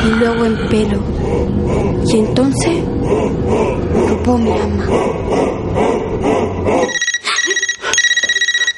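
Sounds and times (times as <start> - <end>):
speech: 0.2 - 5.9
mobile phone ringing: 6.9 - 8.7.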